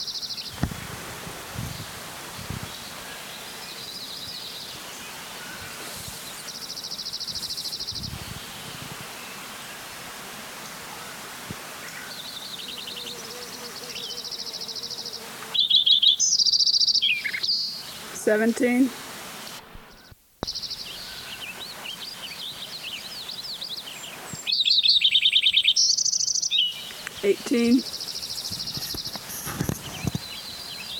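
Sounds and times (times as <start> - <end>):
three birds singing outdoors: 0.0 - 0.6, 2.6 - 9.4, 11.8 - 18.1, 19.9 - 30.9
speech: 18.3 - 19.0, 27.6 - 27.9
soft rustling: 27.8 - 30.4.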